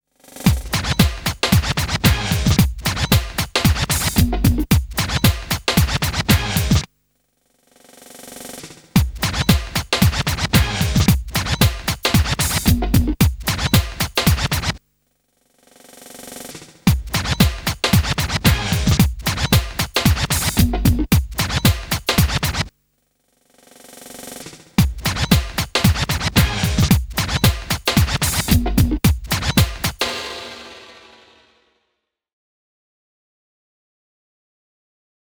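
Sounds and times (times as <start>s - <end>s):
stuttering record scratch loop: 0.5s - 6.9s, 8.3s - 14.8s, 15.9s - 22.7s, 23.8s - 30.3s.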